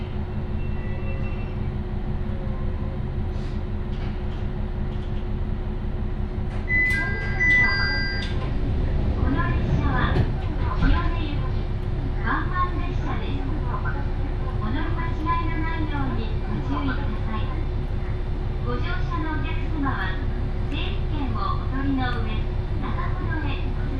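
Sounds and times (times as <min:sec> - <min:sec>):
steady low rumble inside a train car: 0:00.0 - 0:23.9.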